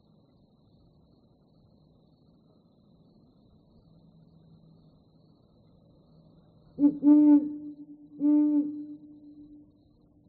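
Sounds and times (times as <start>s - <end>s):
bird low even hooting notes: 6.8s - 9.5s.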